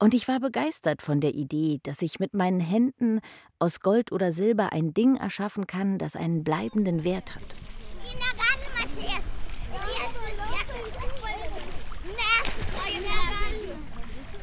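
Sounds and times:
speech: 0:00.0 - 0:08.5
children chattering and calling: 0:06.5 - 0:14.4
person wading knee-deep through shallow warm lagoon water over soft sand: 0:07.0 - 0:14.4.

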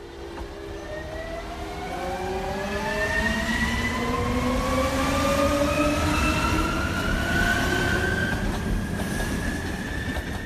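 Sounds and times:
rumble of train wheels and carriages: 0:00.0 - 0:02.2, 0:03.2 - 0:10.4.

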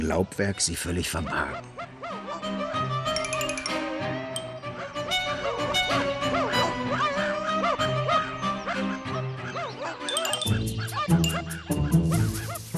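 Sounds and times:
speech: 0:00.1 - 0:01.9
pack of hunting dogs barking and yelping: 0:01.5 - 0:03.2, 0:04.2 - 0:12.6.

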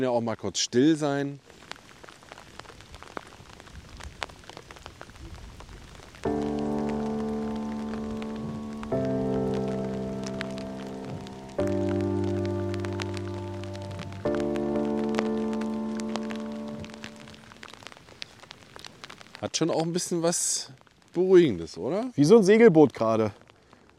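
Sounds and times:
speech: 0:00.0 - 0:01.6, 0:19.6 - 0:23.4
rain pattering on a surface: 0:00.0 - 0:23.9
sustained musical chords: 0:06.3 - 0:17.7.

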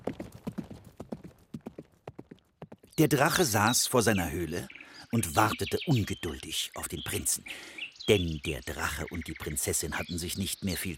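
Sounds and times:
horse hooves galloping: 0:00.0 - 0:03.4
speech: 0:03.0 - 0:10.9.

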